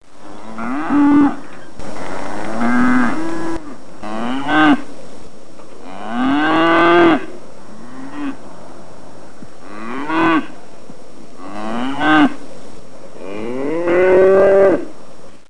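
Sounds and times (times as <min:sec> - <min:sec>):
cow mooing: 0:00.4 - 0:01.4, 0:02.5 - 0:04.8, 0:05.8 - 0:08.4, 0:11.4 - 0:12.4, 0:13.2 - 0:14.9.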